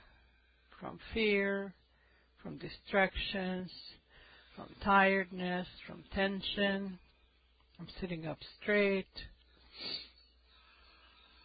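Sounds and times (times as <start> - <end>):
speech: 0.8 - 1.8, 2.4 - 4.0, 4.6 - 7.0, 7.8 - 10.1
person sniffling: 9.7 - 10.2.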